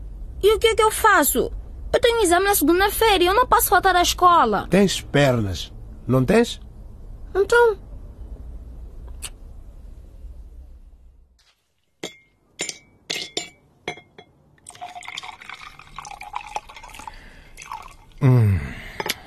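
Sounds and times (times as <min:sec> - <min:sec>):
speech: 0:00.4 - 0:06.6, 0:07.3 - 0:07.8
ice cubes clinking in a glass of whisky: 0:12.0 - 0:18.0
liquid pouring and fizzing over ice: 0:14.6 - 0:18.2.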